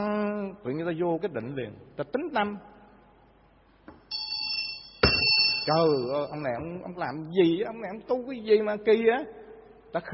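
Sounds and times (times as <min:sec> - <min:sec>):
speech: 0:00.0 - 0:02.7, 0:05.6 - 0:10.1
Buddhist temple bell struck during an incense and lamp offering: 0:04.1 - 0:06.5.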